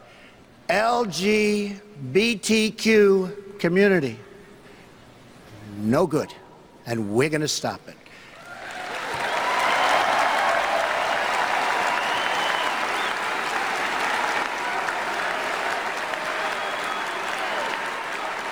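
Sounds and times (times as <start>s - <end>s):
speech: 0.8s - 4.2s, 5.8s - 8.0s
large crowd applauding at a political speech: 8.3s - 18.4s.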